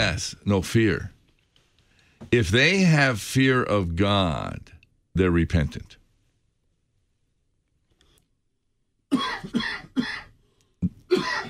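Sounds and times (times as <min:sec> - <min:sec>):
speech: 0:00.0 - 0:01.1, 0:02.2 - 0:06.0
man coughing harsh chesty coughs: 0:09.1 - 0:11.4.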